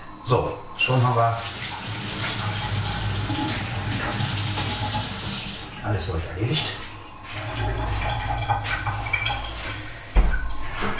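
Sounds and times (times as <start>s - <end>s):
speech: 0.3s - 1.6s, 5.8s - 6.9s
tap water running over hands being rinsed: 0.8s - 10.9s.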